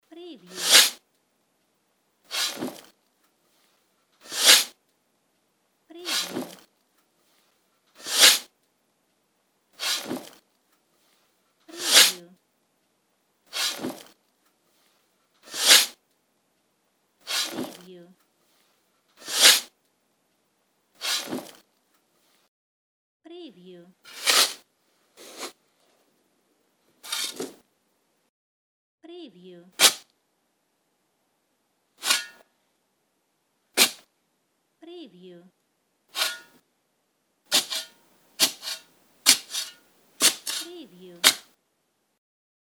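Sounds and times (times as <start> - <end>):
spade digging ground: 0.5 - 1.0, 2.3 - 2.9, 4.2 - 4.7, 6.0 - 6.6, 8.0 - 8.5, 9.8 - 10.4, 11.7 - 12.2, 13.5 - 14.1, 15.4 - 16.0, 17.3 - 17.9, 19.2 - 19.7, 21.0 - 21.6, 24.1 - 24.6, 25.2 - 25.6, 27.0 - 27.6, 29.8 - 30.0, 32.0 - 32.4, 33.8 - 34.0, 36.1 - 36.6, 37.5 - 41.5.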